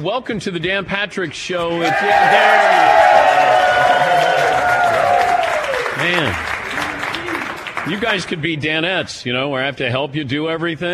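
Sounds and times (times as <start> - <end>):
speech: 0.0 - 4.4, 6.0 - 6.5, 7.8 - 10.9
studio audience clapping: 1.7 - 8.4.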